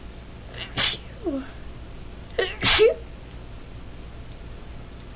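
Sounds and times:
person sneezing: 0.6s - 1.1s, 2.4s - 3.0s.

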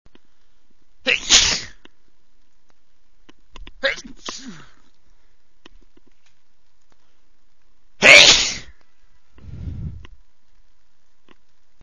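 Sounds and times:
man sneezing quickly: 1.1s - 1.8s, 4.2s - 4.8s, 8.0s - 8.8s.

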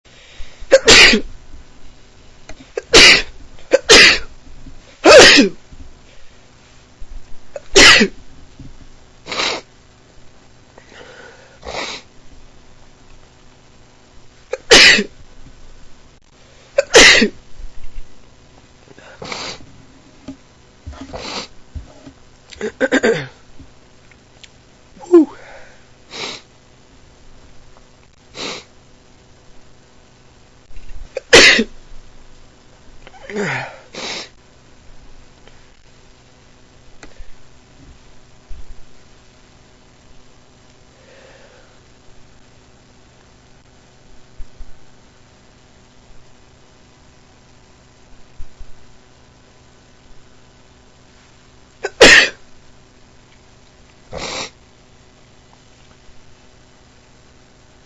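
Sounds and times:
man sneezing: 0.7s - 1.3s, 2.7s - 4.3s, 5.0s - 5.6s, 7.6s - 8.2s, 14.5s - 15.1s, 16.8s - 17.4s, 25.0s - 25.6s, 31.2s - 31.7s, 33.2s - 34.3s, 51.8s - 52.4s.

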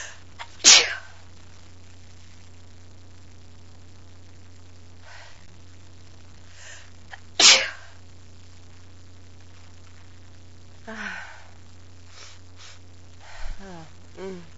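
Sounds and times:
steady low hum: 0.0s - 14.5s
person sneezing: 0.4s - 1.2s
faint sniff or breath: 12.1s - 13.6s.

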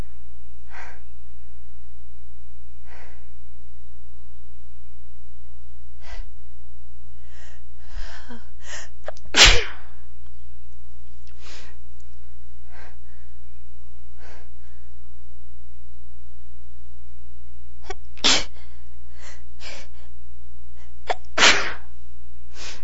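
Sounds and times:
soft breathing and sniffles: 0.0s - 1.3s, 2.7s - 3.6s, 5.9s - 6.5s, 7.1s - 10.1s, 11.3s - 13.5s, 14.1s - 15.0s, 17.8s - 21.9s, 22.5s - 22.8s
steady low hum: 0.0s - 22.8s
person sneezing: 9.1s - 9.9s, 17.9s - 18.6s, 21.1s - 21.9s.

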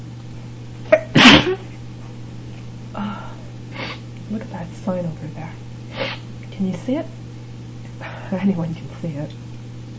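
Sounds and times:
faint steady hum: 0.0s - 9.9s
person sneezing: 0.9s - 1.7s, 6.0s - 6.3s
speech: 4.4s - 5.7s, 6.6s - 7.2s, 8.3s - 9.4s.

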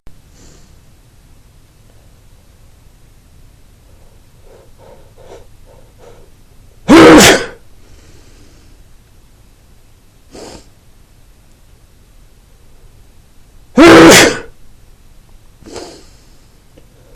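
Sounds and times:
man sneezing persistently: 6.9s - 7.6s, 13.8s - 14.5s.

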